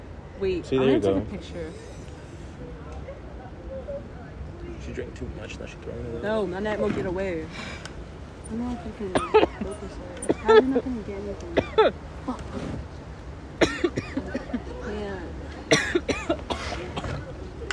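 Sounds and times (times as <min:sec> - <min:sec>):
voices murmuring: 0:00.0 - 0:17.7
speech: 0:00.4 - 0:02.0, 0:04.8 - 0:07.9, 0:08.5 - 0:12.9
person coughing: 0:13.6 - 0:14.4, 0:15.7 - 0:17.2.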